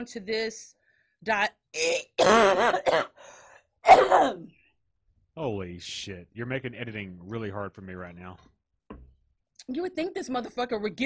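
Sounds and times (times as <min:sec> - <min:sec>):
speech: 0:00.0 - 0:04.6, 0:05.4 - 0:08.5, 0:09.7 - 0:11.0
person coughing and clearing throat while choking on chewed cashews: 0:01.8 - 0:03.2, 0:03.8 - 0:04.5.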